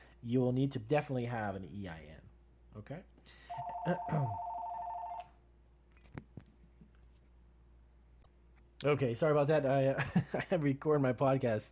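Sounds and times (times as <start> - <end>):
speech: 0.2 - 4.5, 8.8 - 11.7
telephone ringing with electronic two-tone trill in a place of business: 3.5 - 5.3.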